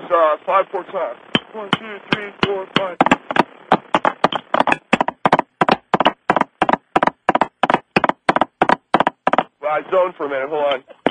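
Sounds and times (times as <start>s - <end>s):
speech: 0.1s - 3.2s, 9.7s - 11.0s
rhythmic knocking clicks like clopping hooves: 1.2s - 9.5s.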